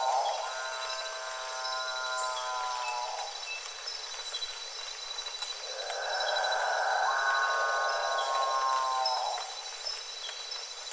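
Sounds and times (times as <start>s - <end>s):
capuchinbird call with rich harmonics: 0.0s - 3.4s, 5.8s - 9.6s
background hiss: 0.0s - 10.9s.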